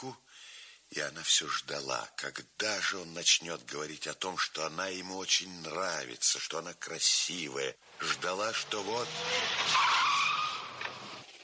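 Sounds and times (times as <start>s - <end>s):
speech: 0.0s - 0.2s, 0.9s - 10.1s
large black car's tires screeching as it brakes and skids: 7.9s - 11.4s.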